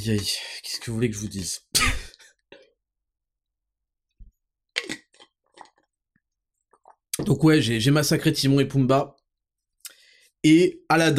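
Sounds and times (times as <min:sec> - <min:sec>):
speech: 0:00.0 - 0:02.0, 0:07.3 - 0:09.2, 0:10.4 - 0:11.1
person gulping a drink: 0:02.0 - 0:02.8, 0:04.8 - 0:06.0, 0:06.7 - 0:07.3
small mouth clicks: 0:04.8 - 0:05.8
person taking a sip of a drink: 0:04.8 - 0:05.9.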